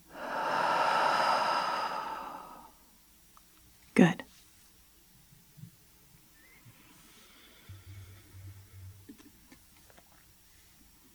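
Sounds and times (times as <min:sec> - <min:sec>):
slow breath out through the mouth: 0:00.0 - 0:02.8
speech: 0:04.0 - 0:04.2.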